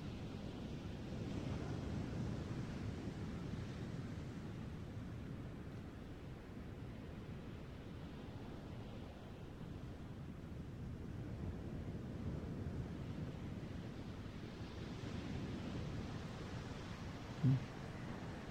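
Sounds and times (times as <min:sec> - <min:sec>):
ocean waves washing onto a shore: 0:00.1 - 0:18.4.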